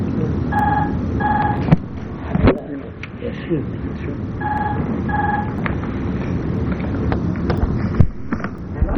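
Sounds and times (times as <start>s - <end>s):
steady rumble: 0.0s - 8.9s
telephone ringing in classic double-burst pattern: 0.5s - 1.7s, 4.4s - 5.6s.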